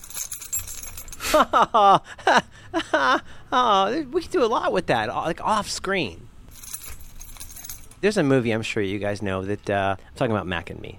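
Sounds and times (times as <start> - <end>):
keys jangling: 0.0 - 1.4, 6.5 - 8.0
speech: 1.3 - 6.3, 8.0 - 10.9.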